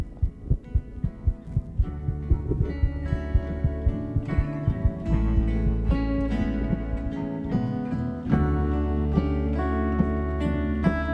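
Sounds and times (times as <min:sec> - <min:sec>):
deep rumble: 0:00.0 - 0:08.2
heartbeat picked up by microphone during hug: 0:00.0 - 0:08.6
sustained music: 0:00.0 - 0:11.0.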